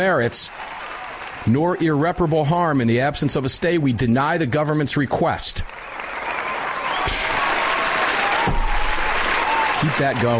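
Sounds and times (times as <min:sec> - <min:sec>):
speech: 0:00.0 - 0:00.8, 0:01.4 - 0:06.0, 0:09.8 - 0:10.3
golf-clap applause from a group: 0:00.0 - 0:02.4, 0:05.6 - 0:10.3.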